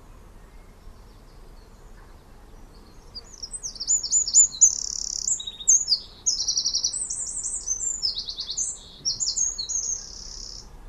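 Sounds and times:
Eurasian wren Troglodytes troglodytes singing: 0.0 - 10.8.

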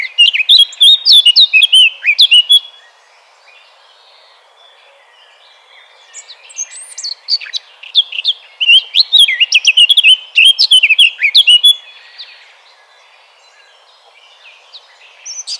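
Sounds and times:
Eurasian blackcap Sylvia atricapilla warbling song: 0.0 - 2.9, 5.1 - 12.4, 13.5 - 15.5.

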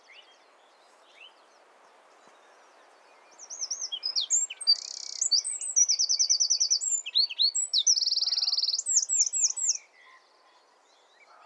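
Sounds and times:
Eurasian wren Troglodytes troglodytes singing: 3.4 - 9.9.

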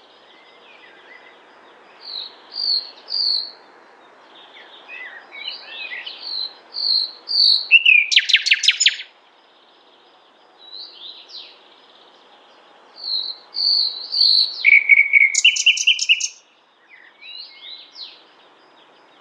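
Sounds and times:
common nightingale Luscinia megarhynchos song: 0.0 - 19.1
speech: 2.7 - 3.9.

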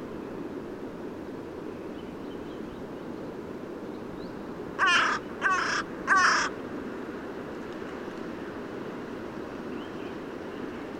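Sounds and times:
Carrion crow Corvus corone cawing: 4.8 - 6.6.

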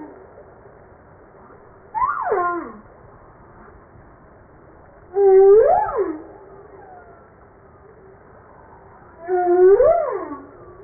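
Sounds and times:
humpback whale song moans: 2.0 - 2.8, 5.1 - 7.3, 9.0 - 10.8.

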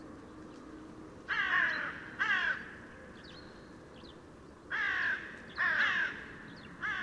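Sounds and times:
Corvus corone cawing: 1.3 - 2.8, 4.7 - 7.0.

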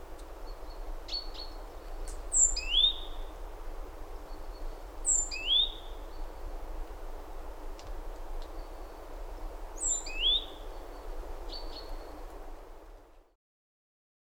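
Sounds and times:
faint background noise: 0.0 - 13.4
great tit calls: 0.5 - 3.4, 4.3 - 6.2, 9.8 - 12.0.

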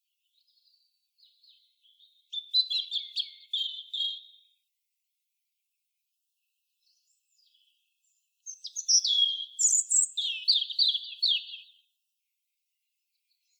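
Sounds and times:
European robin singing: 0.2 - 4.6, 6.8 - 11.9.

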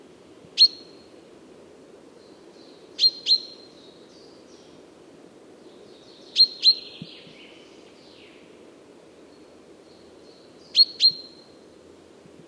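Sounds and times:
Common chaffinch Fringilla coelebs calls: 0.6 - 1.0, 2.6 - 3.8, 6.0 - 7.4, 10.3 - 11.4.

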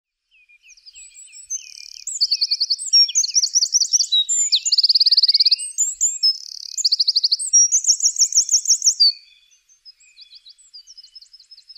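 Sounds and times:
Eurasian wren Troglodytes troglodytes singing: 0.7 - 11.7.

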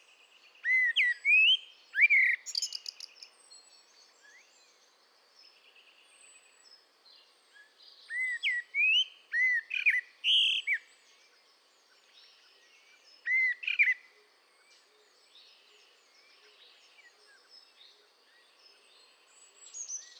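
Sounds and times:
common blackbird Turdus merula singing: 0.6 - 3.3, 8.1 - 10.9, 13.2 - 14.0.

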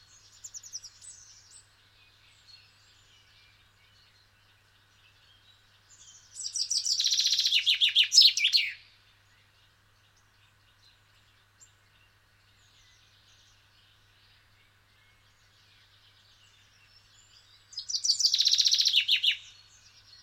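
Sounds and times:
common chaffinch Fringilla coelebs singing: 6.1 - 8.8, 17.8 - 19.5.

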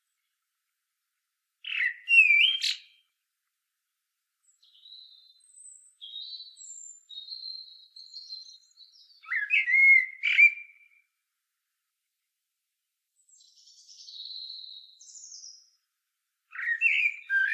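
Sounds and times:
common blackbird Turdus merula song: 1.6 - 3.2, 4.4 - 11.1, 13.2 - 15.9, 16.5 - 17.5.

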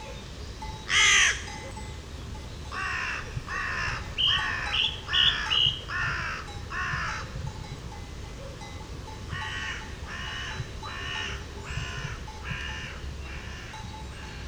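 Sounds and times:
carrion crow Corvus corone cawing: 0.9 - 1.4, 2.7 - 7.3, 9.4 - 14.4.

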